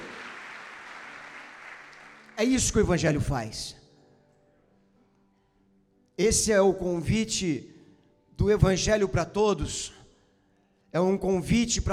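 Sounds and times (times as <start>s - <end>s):
crowd applauding: 0.0s - 2.8s
speech: 2.4s - 3.8s, 6.2s - 7.7s, 8.4s - 10.0s, 10.9s - 11.9s.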